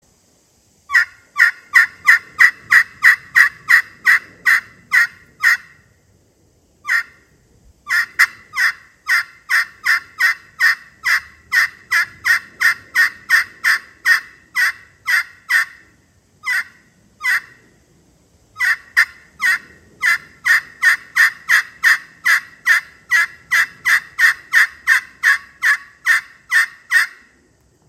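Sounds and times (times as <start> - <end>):
Wenge and Canarywood Crystal turkey call: 0.9 - 5.8, 6.8 - 7.2, 7.9 - 17.6, 18.6 - 27.4.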